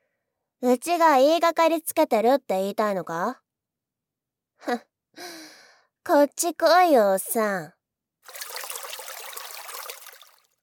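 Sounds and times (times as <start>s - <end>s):
speech: 0.6s - 3.4s, 4.6s - 5.4s, 6.1s - 8.5s
river water trickling past a riverbank: 8.3s - 10.5s.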